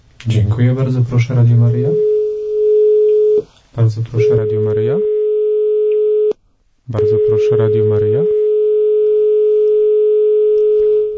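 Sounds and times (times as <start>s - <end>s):
speech: 0.2s - 2.1s, 3.4s - 5.1s, 6.9s - 8.3s
steady telephone line tone: 2.0s - 3.4s, 4.2s - 6.3s, 7.0s - 11.1s.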